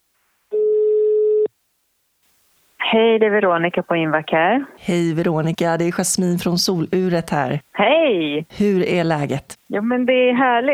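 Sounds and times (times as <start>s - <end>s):
ringback tone over a phone line during an outgoing call: 0.5s - 1.5s
speech: 2.9s - 10.7s.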